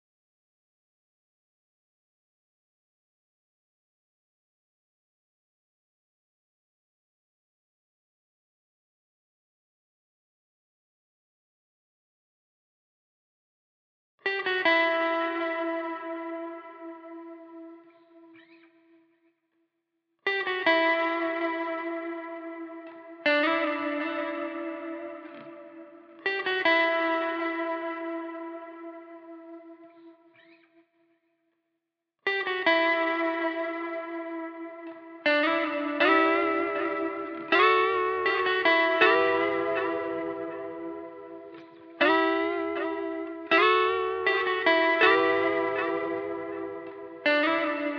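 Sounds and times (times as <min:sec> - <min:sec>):
E minor lead guitar loop at 80 BPM: 0:14.2 - 0:18.7, 0:20.3 - 0:30.6, 0:32.3 - 0:47.9.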